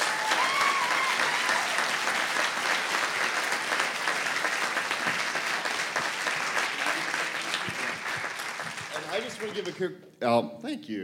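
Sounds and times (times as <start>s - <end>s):
faint scattered cheers: 0.0s - 2.3s
sustained applause from a large theatre audience: 0.0s - 9.9s
speech: 9.4s - 11.0s.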